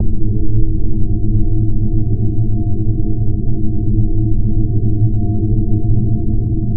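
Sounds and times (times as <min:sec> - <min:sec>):
gloomy mono ambience: 0:00.0 - 0:06.7.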